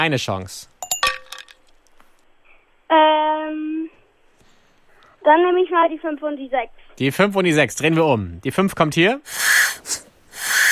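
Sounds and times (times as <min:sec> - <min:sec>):
speech: 0:00.0 - 0:00.7, 0:02.9 - 0:03.6, 0:05.3 - 0:10.6
glassy clinks: 0:00.8 - 0:01.8.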